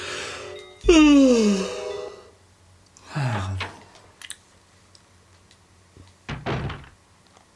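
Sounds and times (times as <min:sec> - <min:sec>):
person yawning: 0:00.8 - 0:01.8.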